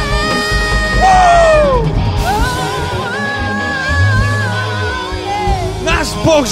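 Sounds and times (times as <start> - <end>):
worship audience shouting and cheering praising God: 0.0 - 6.5.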